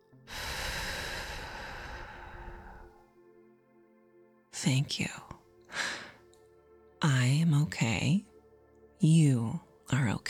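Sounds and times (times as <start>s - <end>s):
person exhaling slowly: 0.3s - 3.0s, 5.7s - 6.2s
speech: 4.6s - 5.3s, 7.0s - 8.3s, 9.0s - 10.2s.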